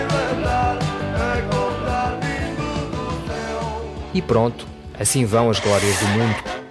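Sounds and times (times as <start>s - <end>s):
recorded pop song with sung vocals: 0.0s - 4.1s
speech: 4.2s - 6.5s.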